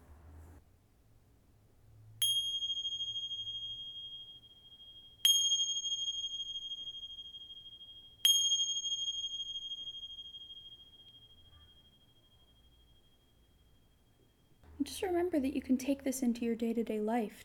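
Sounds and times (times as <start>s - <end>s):
meditation bell ringing: 2.2s - 14.6s
speech: 14.8s - 17.4s.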